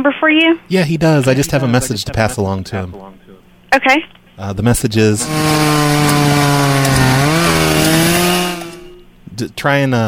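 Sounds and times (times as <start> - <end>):
speech: 0.0 - 7.2, 9.4 - 10.0
chainsaw engine buzzing during tree removal work in a yard: 5.0 - 9.1.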